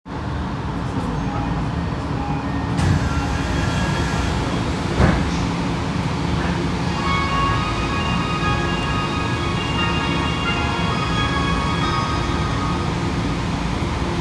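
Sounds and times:
subway train sounds east of Inaricho on the Ginza Line: 0:00.2 - 0:14.2.

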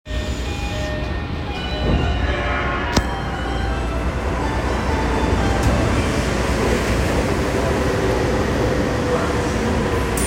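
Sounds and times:
train sounds on the Yurakucho Line: 0:00.1 - 0:10.2.

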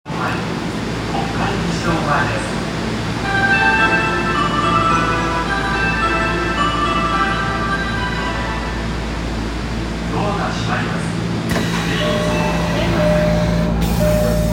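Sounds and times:
Marunouchi Line subway train at Kokkai-gijido-mae station: 0:00.0 - 0:14.5.

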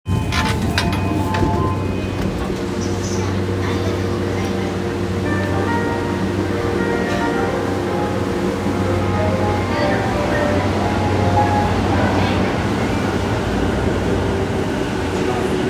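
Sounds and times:
JR Yamanote Line train sounds at Nippori: 0:00.1 - 0:15.6.

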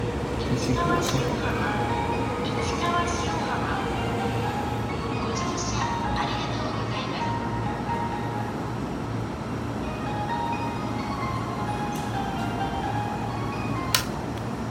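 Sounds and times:
train sounds at Ichikawashiohama on the Keiyo Line: 0:00.0 - 0:14.6.

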